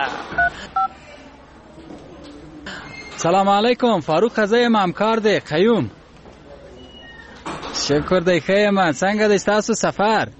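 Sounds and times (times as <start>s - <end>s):
faint noise: 0.0s - 10.3s
telephone keypad tones dialing a number: 0.4s - 0.9s
speech: 3.2s - 6.0s, 7.9s - 10.3s.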